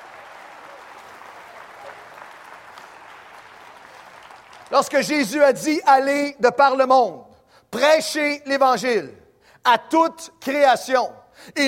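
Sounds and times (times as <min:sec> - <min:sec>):
audience applause: 0:00.0 - 0:04.8
speech: 0:04.7 - 0:11.6.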